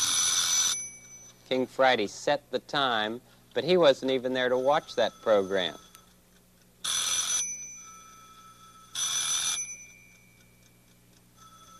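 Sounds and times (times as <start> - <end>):
telephone bell ringing: 0.0 - 1.3, 4.6 - 6.1, 6.8 - 10.3, 11.4 - 11.7
speech: 1.5 - 5.8.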